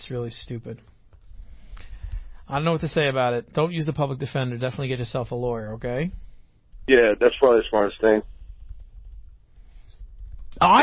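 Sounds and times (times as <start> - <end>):
speech: 0.1 - 1.0, 2.5 - 6.2, 6.9 - 8.3, 10.6 - 10.8
typing on a computer keyboard: 8.4 - 10.6.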